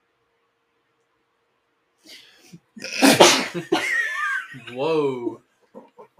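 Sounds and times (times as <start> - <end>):
person sneezing: 2.8 - 3.6
speech: 3.6 - 3.8, 4.7 - 5.5.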